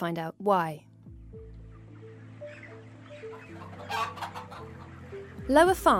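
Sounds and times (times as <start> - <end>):
speech: 0.0 - 1.5, 5.5 - 5.9
chickens clucking inside a chicken shed on a farm in Derbyshire England: 1.2 - 5.7.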